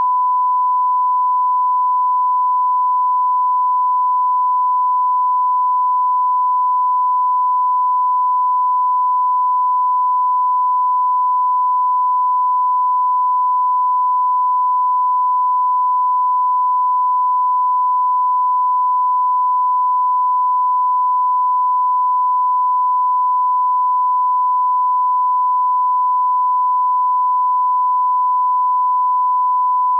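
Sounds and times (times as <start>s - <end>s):
1 kHz sine wave tone: 0.0s - 29.9s.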